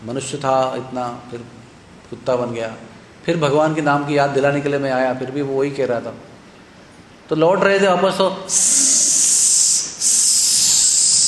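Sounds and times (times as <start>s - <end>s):
speech: 0.0s - 6.3s, 7.3s - 8.9s
voice imitating a snake's hiss: 8.5s - 11.2s.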